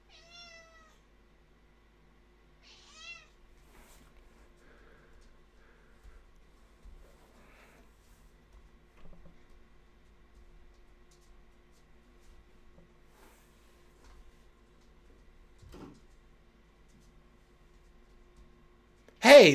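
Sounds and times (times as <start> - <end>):
low hum: 0.0 - 19.5
cat meowing: 0.1 - 1.0, 2.6 - 3.3.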